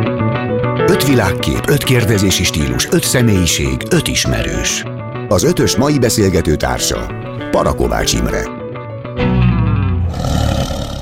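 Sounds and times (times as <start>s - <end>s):
speech: 0.9s - 8.6s
deep powerful tiger roar: 9.2s - 11.0s.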